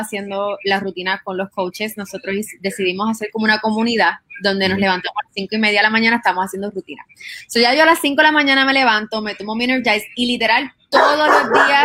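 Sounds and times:
speech: 0.0 - 11.8
woman talking quickly: 0.0 - 11.8
dog barking: 11.0 - 11.8.

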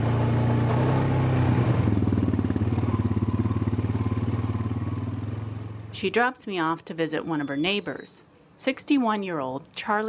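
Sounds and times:
small four-wheel all-terrain vehicle engine revving: 0.0 - 6.0
speech: 6.0 - 10.0.

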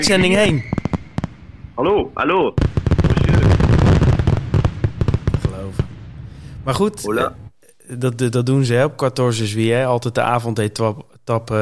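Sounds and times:
speech: 0.0 - 0.7, 1.8 - 2.8, 6.6 - 11.6
fireworks crackling and banging outside: 0.0 - 1.7, 2.6 - 7.6.

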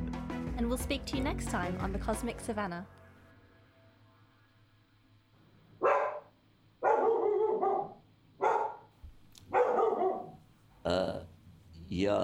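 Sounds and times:
speech: 0.6 - 3.0, 12.0 - 12.2
dog barking: 5.8 - 8.9, 9.5 - 10.4.

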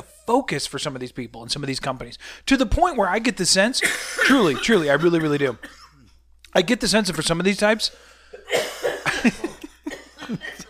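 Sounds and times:
speech: 0.3 - 5.8, 6.5 - 9.5, 10.3 - 10.6
man clearing his throat: 3.8 - 6.2, 8.4 - 10.6
man coughing: 3.8 - 6.2, 8.3 - 10.6.

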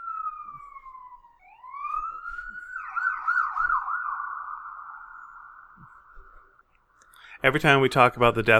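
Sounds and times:
emergency vehicle siren wailing: 0.0 - 6.7
speech: 7.4 - 8.5.

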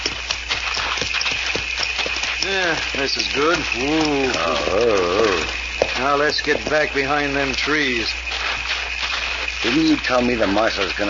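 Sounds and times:
constant hiss of noise: 0.0 - 11.0
horses' hooves clip-clopping at a walking pace as they are led: 0.0 - 11.0
speech: 2.5 - 8.2, 9.6 - 11.0.

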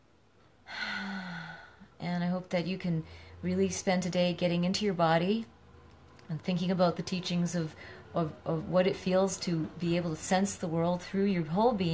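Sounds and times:
deep breath drawn in: 0.6 - 2.0
speech: 2.0 - 5.6, 6.3 - 11.9.

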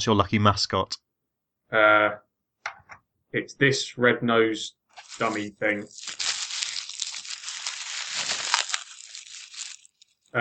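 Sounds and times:
speech: 0.0 - 1.0, 1.7 - 2.2, 3.3 - 6.2
bubble wrap crumpled frantically against the microphone: 5.0 - 10.3.

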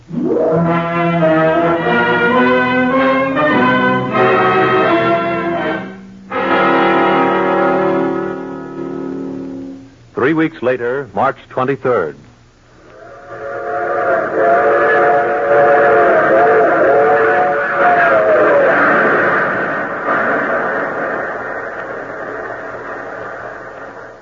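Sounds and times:
loud multi-toned train whistle: 0.1 - 9.0, 12.9 - 19.2
speech: 10.3 - 12.3
train rumbling on rails: 14.5 - 24.2.

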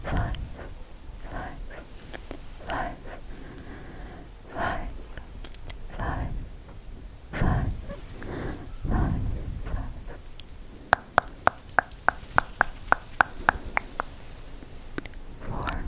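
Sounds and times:
sharp tongue clicks: 0.0 - 0.7, 5.2 - 5.8, 9.7 - 15.8
mouth sounds: 0.0 - 6.5, 7.3 - 15.8
soft breathy whispers: 0.0 - 15.8.

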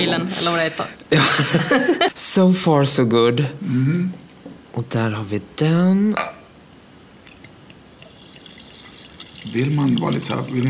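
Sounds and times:
speech: 0.0 - 4.2, 4.8 - 6.4, 9.5 - 10.6
laughter: 1.1 - 2.2
liquid pouring from a bottle into a glass: 7.3 - 10.6.

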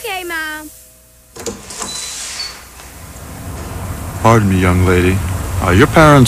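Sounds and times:
door opening with a mechanical clunk and sliding hiss: 1.4 - 3.9
speech: 4.2 - 6.2.

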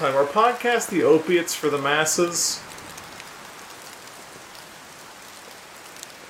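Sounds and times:
speech: 0.0 - 2.8
droplets spattering and pattering: 0.0 - 6.2
heavy rain: 0.0 - 6.2.

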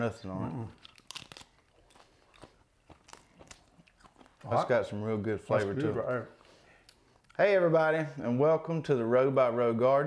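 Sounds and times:
speech: 0.0 - 1.0, 4.4 - 6.4, 7.4 - 10.0
crisp crunchy bites into fresh homegrown romaine lettuce: 0.7 - 4.4.

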